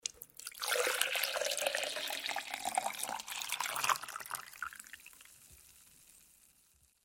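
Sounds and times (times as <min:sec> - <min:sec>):
water pouring out: 0:00.0 - 0:05.4.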